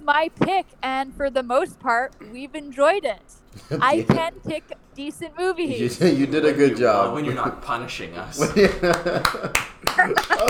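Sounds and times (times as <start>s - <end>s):
voices murmuring: 0.0s - 10.4s
speech: 0.1s - 10.4s
laughter: 3.5s - 10.4s
people clapping: 7.2s - 10.4s.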